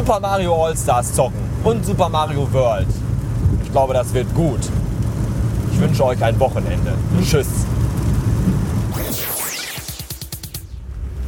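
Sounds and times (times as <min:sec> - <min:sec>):
speech: 0:00.0 - 0:03.0, 0:03.7 - 0:04.8, 0:05.8 - 0:07.8
steady rain: 0:00.0 - 0:09.2, 0:10.8 - 0:11.2
sweeping whoosh: 0:08.8 - 0:11.2.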